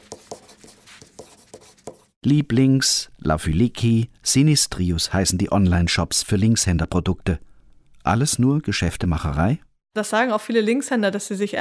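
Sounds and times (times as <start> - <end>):
left-handed fountain pen writing on paper: 0.0 - 2.2
speech: 2.2 - 11.6.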